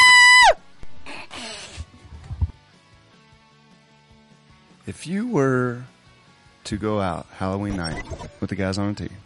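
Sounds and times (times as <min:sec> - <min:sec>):
person imitating a playful scream: 0:00.0 - 0:00.6
speech: 0:04.9 - 0:05.9, 0:06.6 - 0:09.2.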